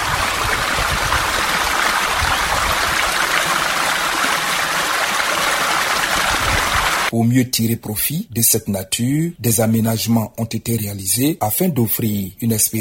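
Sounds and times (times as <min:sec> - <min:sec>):
rushing water from a river cascade: 0:00.0 - 0:07.1
speech: 0:07.1 - 0:12.7.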